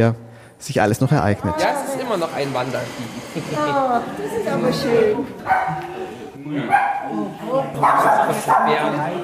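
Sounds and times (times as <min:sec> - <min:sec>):
murmur of people talking: 0:00.0 - 0:09.2
speech: 0:00.0 - 0:09.2
several dogs barking and yipping at a dog show: 0:05.4 - 0:05.9, 0:06.7 - 0:07.1, 0:07.8 - 0:09.0.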